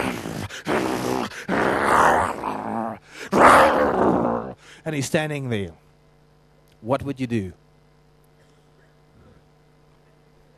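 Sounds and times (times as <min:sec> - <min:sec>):
big black Rottweiler growling and snarling: 0:00.0 - 0:04.6
speech: 0:00.6 - 0:00.8, 0:04.8 - 0:05.8, 0:06.8 - 0:07.6.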